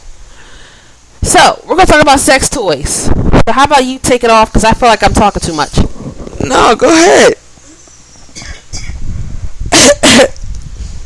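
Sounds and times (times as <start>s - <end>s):
speech: 1.4s - 7.4s
person coughing: 8.4s - 9.0s, 9.7s - 10.4s.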